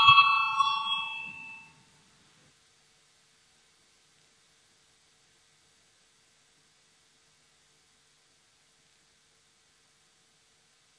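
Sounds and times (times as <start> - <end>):
bright bell rung in a parliament to call a vote: 0.0 - 1.8.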